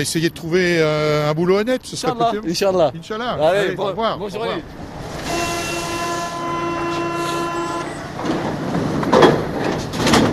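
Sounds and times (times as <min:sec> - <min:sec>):
speech: 0:00.0 - 0:04.9
metro train doors sliding with hissing and rattling: 0:04.8 - 0:10.3
metro train arriving at a terminus with electric whine: 0:05.2 - 0:08.6.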